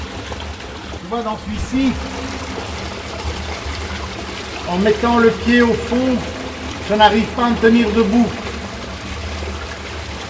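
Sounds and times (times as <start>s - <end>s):
knee-deep fast-flowing water rushing down a steeply sloping street: 0.0s - 10.2s
speech: 1.1s - 2.6s, 4.7s - 8.4s.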